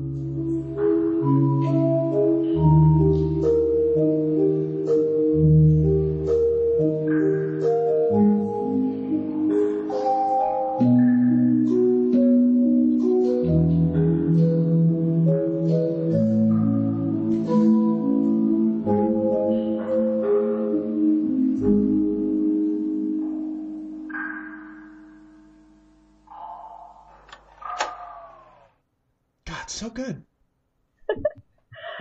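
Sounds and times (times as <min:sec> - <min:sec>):
Scandinavian electronica composition played on a cave organ: 0:00.0 - 0:28.7.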